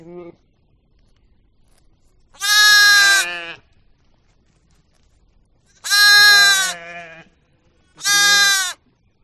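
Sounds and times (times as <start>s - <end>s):
sheep bleating: 2.4s - 3.6s, 5.8s - 7.3s, 8.0s - 8.8s.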